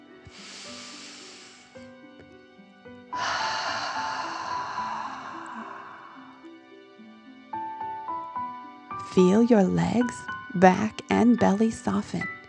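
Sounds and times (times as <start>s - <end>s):
soft sustained music: 0.0s - 12.4s
forceful exhale: 0.3s - 1.9s, 3.2s - 6.5s
slow inhale through the nose: 0.3s - 1.9s, 3.1s - 6.5s
speech: 9.2s - 12.4s.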